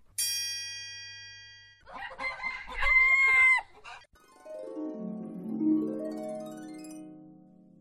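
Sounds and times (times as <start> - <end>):
rooster crowing: 1.9 - 4.1.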